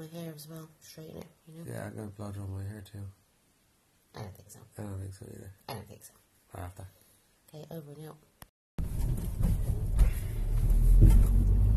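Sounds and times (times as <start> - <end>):
speech: 0.4 - 3.2, 4.2 - 8.3
faint thump: 8.8 - 11.5
road noise inside a moving car: 10.4 - 11.7.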